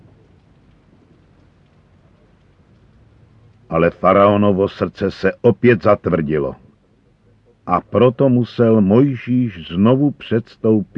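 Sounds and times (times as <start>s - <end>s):
continuous low rumble of thunder: 0.0s - 4.0s
dense pelting rain or hail in a storm: 0.0s - 5.4s
speech: 3.7s - 6.6s, 7.7s - 10.9s.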